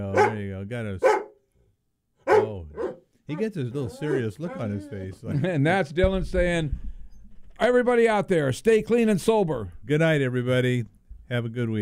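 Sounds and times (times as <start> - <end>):
speech: 0.0 - 1.2, 2.5 - 6.9, 7.6 - 11.7
dog barking: 0.1 - 1.4, 2.2 - 5.0.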